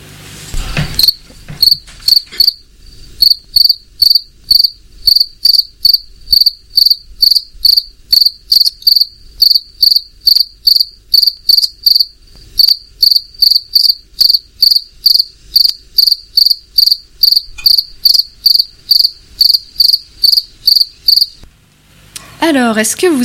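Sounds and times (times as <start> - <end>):
cricket chirping: 1.0 - 21.4
speech: 4.6 - 6.6, 12.6 - 13.1, 18.6 - 21.6, 22.4 - 23.2.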